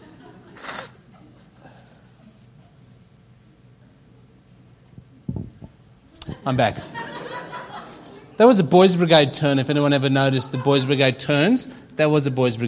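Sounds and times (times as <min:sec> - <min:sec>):
laughter: 0:00.0 - 0:01.9, 0:06.2 - 0:08.4, 0:09.9 - 0:11.6
person blowing nose into a tissue: 0:00.5 - 0:01.1
speech: 0:06.4 - 0:07.0, 0:08.4 - 0:12.6.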